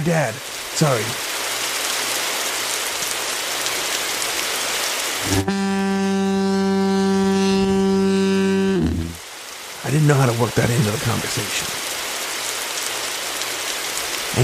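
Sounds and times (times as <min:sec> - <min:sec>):
speech: 0:00.0 - 0:01.3, 0:05.2 - 0:06.0, 0:09.9 - 0:11.8
steady dense rain: 0:00.0 - 0:14.4
loud deep horn blast: 0:05.2 - 0:09.2.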